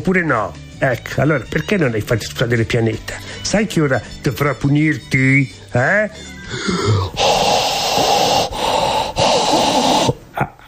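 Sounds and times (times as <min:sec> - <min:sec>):
speech: 0:00.0 - 0:08.1
person breathing heavily with raspy hissing breaths: 0:03.2 - 0:03.4, 0:06.2 - 0:10.6.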